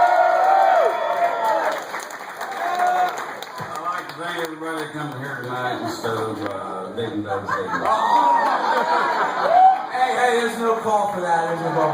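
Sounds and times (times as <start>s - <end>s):
whoops and cheers: 0.0s - 3.3s, 7.8s - 8.8s, 9.4s - 10.0s
crowd applauding: 0.0s - 6.4s, 7.8s - 11.9s
speech: 4.9s - 11.9s
laughter: 7.0s - 10.5s.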